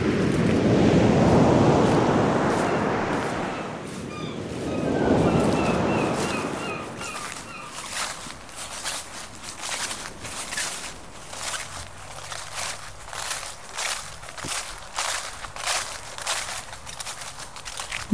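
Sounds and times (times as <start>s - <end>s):
sea waves crashing below a cliff: 0.0s - 18.1s
wind noise: 0.0s - 18.1s
faint high chirping calls: 4.1s - 13.4s.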